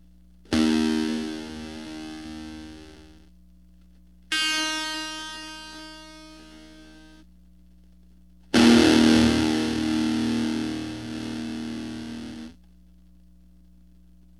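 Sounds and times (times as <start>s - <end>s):
distorted guitar from a microcontroller guitar: 0.5s - 3.2s, 4.3s - 7.2s, 8.6s - 12.6s.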